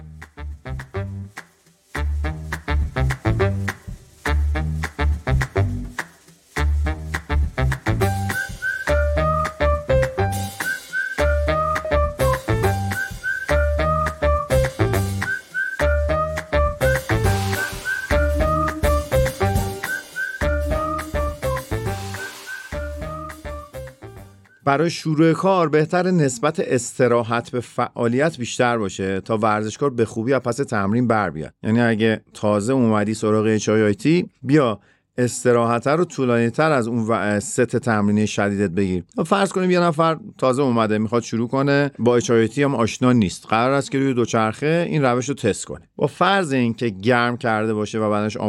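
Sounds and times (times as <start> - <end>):
instrumental music with pulsing beat and bright whistle-like melody: 0.0 - 24.7
speech: 24.7 - 48.4.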